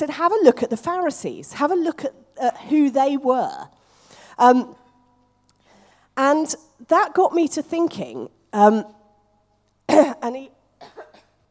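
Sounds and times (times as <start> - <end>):
speech: 0.0 - 3.8, 4.4 - 4.8, 6.2 - 9.0, 9.9 - 11.1
person coughing close to the microphone: 9.9 - 11.4.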